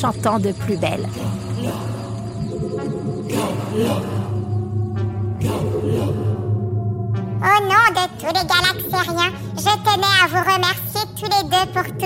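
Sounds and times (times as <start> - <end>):
speech: 0.0 - 1.9, 3.3 - 4.2, 7.4 - 12.0
sci-fi spaceship engine powering up and humming: 0.0 - 9.6.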